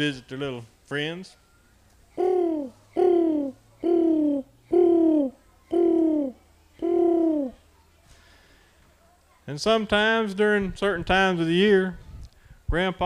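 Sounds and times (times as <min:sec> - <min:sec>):
speech: 0:00.0 - 0:01.4, 0:09.5 - 0:12.0, 0:12.7 - 0:13.0
faint low hum: 0:00.0 - 0:09.4
pigeons cooing: 0:02.2 - 0:07.6.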